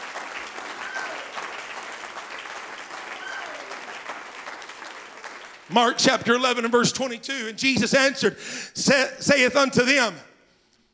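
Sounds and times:
church audience applause: 0.0 - 6.0
speech: 5.7 - 10.3.

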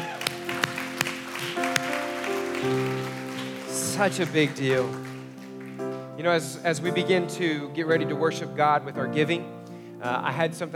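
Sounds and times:
church audience clapping after a prayer: 0.0 - 6.2
sustained organ or keyboard chords: 0.0 - 7.8
speech: 2.6 - 3.0, 4.0 - 5.1, 6.2 - 10.7.

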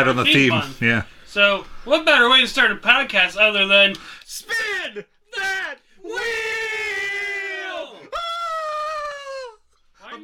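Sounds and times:
speech: 0.0 - 6.6
person screaming in excitement: 7.7 - 9.6.

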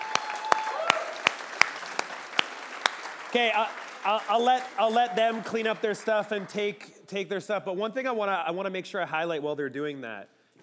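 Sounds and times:
audience applause for the panel: 0.0 - 6.7
speech: 3.3 - 10.6.

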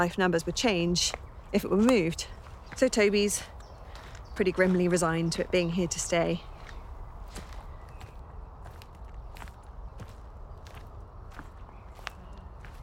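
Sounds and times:
speech: 0.0 - 3.5, 4.4 - 6.5
traffic rumble: 0.0 - 12.8
footsteps walking along a gravelly heathland track: 1.0 - 12.8.

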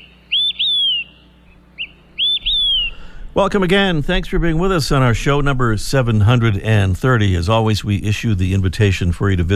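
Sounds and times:
olive-sided flycatcher singing whistled phrases: 0.0 - 3.2
speech: 3.4 - 9.5.

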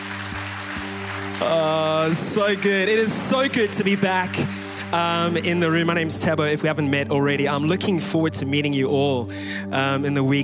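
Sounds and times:
large crowd clapping: 0.0 - 6.8
speech: 1.4 - 10.4.

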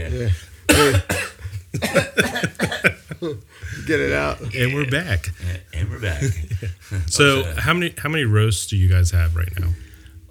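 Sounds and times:
speech: 0.0 - 1.0, 3.2 - 9.8
throat-clearing: 0.0 - 7.7
people coughing: 0.0 - 7.8
laughter: 0.0 - 9.9.

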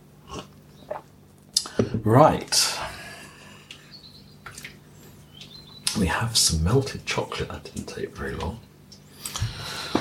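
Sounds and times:
person sipping coffee: 0.2 - 1.8
speech: 2.0 - 2.6, 6.0 - 8.7.

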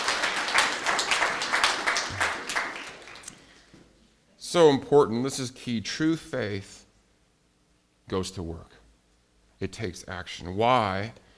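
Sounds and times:
crowd applauding: 0.0 - 3.7
speech: 4.5 - 6.8, 8.1 - 8.8, 9.6 - 11.2.

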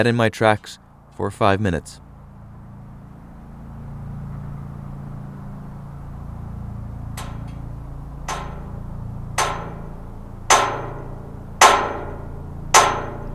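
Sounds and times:
speech: 0.0 - 2.0
low hum: 2.0 - 13.3
metallic strikes on welded metal corner: 7.0 - 13.3.

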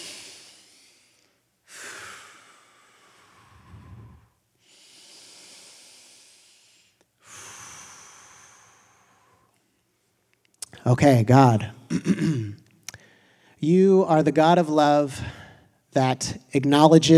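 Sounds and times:
slow deep breathing during a group prayer pause: 0.0 - 9.7, 12.9 - 13.6
speech: 10.8 - 12.6, 13.6 - 17.1.

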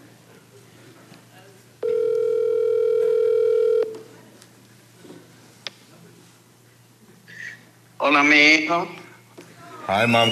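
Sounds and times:
phone call ringing tone: 1.8 - 4.0
speech: 8.1 - 9.0, 9.9 - 10.3.

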